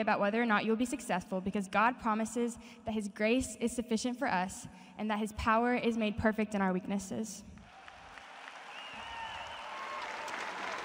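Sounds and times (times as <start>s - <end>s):
speech: 0.0s - 7.5s
large crowd of peers applauding: 7.6s - 10.8s.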